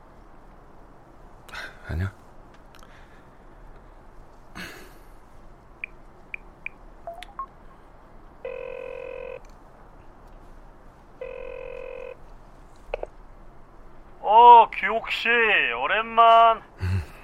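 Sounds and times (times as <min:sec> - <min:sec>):
faint noise: 0:00.0 - 0:17.2
speech: 0:01.9 - 0:02.2, 0:15.1 - 0:16.7
telephone ringback tone: 0:08.4 - 0:09.4, 0:11.2 - 0:12.2.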